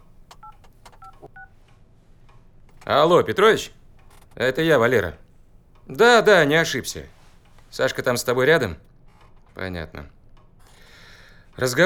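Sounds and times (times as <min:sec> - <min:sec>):
telephone touch-tone beeps as a number is dialled: 0:00.0 - 0:01.5
speech: 0:02.9 - 0:03.8, 0:04.4 - 0:05.2, 0:05.9 - 0:08.9, 0:09.6 - 0:10.2, 0:11.6 - 0:11.8.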